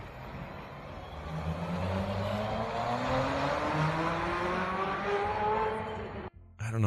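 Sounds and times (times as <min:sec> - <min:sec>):
car engine revving in a parking lot: 0:00.9 - 0:06.3.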